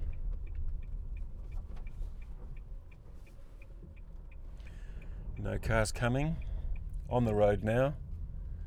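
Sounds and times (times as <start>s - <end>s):
turn indicator ticking inside an electric car: 0.0s - 8.1s
speech: 5.4s - 6.5s, 7.1s - 8.0s.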